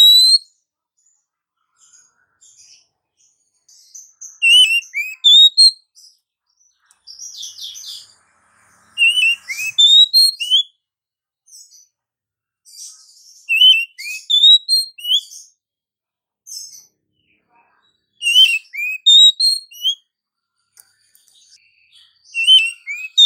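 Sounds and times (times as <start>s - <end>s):
female oriental magpie-robin singing with whistled notes and scratchy notes: 0.0s - 0.5s, 4.0s - 5.8s, 9.0s - 10.7s, 13.4s - 15.5s, 18.2s - 20.0s, 22.2s - 23.2s.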